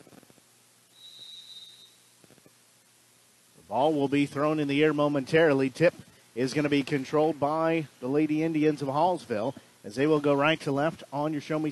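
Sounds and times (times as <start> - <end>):
referee's whistle blast before basketball tip-off: 1.0 - 1.9
speech: 3.7 - 11.6.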